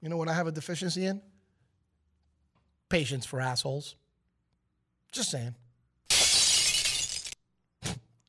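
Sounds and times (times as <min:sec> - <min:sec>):
speech: 0:00.0 - 0:01.4, 0:02.9 - 0:04.0, 0:05.1 - 0:05.6
glass shattering sound effect: 0:06.1 - 0:07.4.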